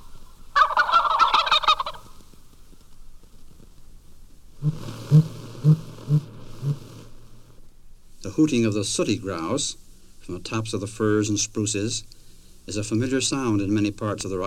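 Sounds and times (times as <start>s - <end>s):
wild turkey gobbling in the Aransas Wildlife Refuge in Texas: 0.0s - 2.3s, 4.6s - 7.2s
speech: 4.6s - 5.3s, 8.4s - 14.4s.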